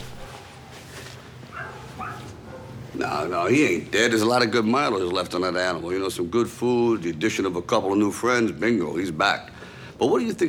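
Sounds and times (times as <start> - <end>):
scruffy dog yelping barks: 1.5 - 2.8
speech: 3.0 - 10.4.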